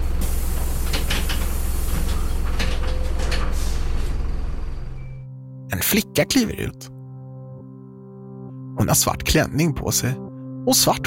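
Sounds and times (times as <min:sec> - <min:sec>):
old rusty bus doors opening with a hissing clattering rattle: 0:00.0 - 0:05.0
steady low bus engine rumble: 0:00.0 - 0:05.3
speech: 0:05.9 - 0:06.9, 0:08.8 - 0:11.0.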